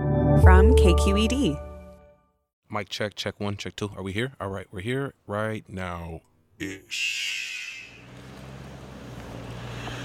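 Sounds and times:
speech: 0.4 - 1.7, 2.7 - 7.6
truck air brakes hissing outdoors in Richmond, California: 7.0 - 8.2
heavy truck traffic engine rumble outdoors in Richmond, California: 7.1 - 10.0.

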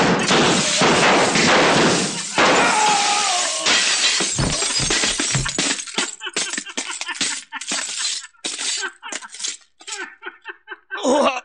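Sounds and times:
gunshots shattering mirrors: 0.0 - 3.0
mirror glass breaking: 0.0 - 10.0
glass shards tinkling as they fall and settle: 0.5 - 10.1
laughter: 4.6 - 11.4.

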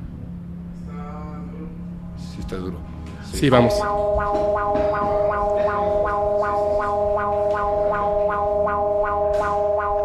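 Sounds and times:
speech: 2.4 - 9.9
earthquake early warning siren pulsing: 3.4 - 10.0.

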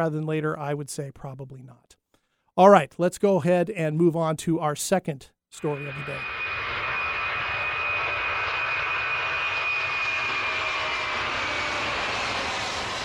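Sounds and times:
speech: 0.0 - 2.0, 2.6 - 6.4
airplane engine roaring with hiss and high whine: 5.6 - 13.0.

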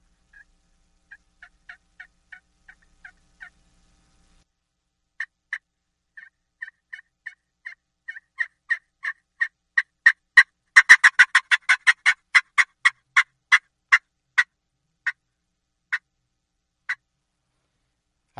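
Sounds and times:
friction call imitating a turkey fly-down cackle: 0.3 - 0.5, 1.1 - 3.6, 6.2 - 15.2.

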